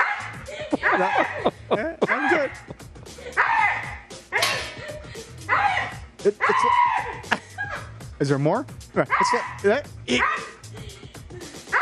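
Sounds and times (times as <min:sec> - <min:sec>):
husky pulling on a rope barking and yipping: 0:00.0 - 0:02.6, 0:03.3 - 0:04.8, 0:05.5 - 0:07.2, 0:09.1 - 0:10.6
laughter: 0:00.3 - 0:03.7, 0:04.5 - 0:05.6, 0:07.0 - 0:08.0, 0:10.5 - 0:11.8
speech: 0:01.0 - 0:02.7, 0:06.2 - 0:06.9, 0:08.2 - 0:10.5.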